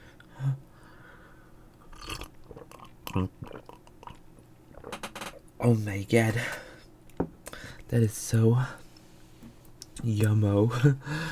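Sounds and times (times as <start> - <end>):
person sipping a drink with slurps and wet clicks: 1.8 - 4.9
speech: 3.1 - 3.7, 5.6 - 6.6, 7.9 - 8.8, 10.0 - 11.3.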